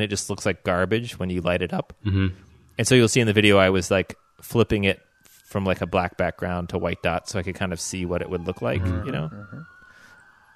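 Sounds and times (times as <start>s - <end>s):
speech: 0.0s - 9.8s
police car siren wailing passing by a house: 2.8s - 10.5s.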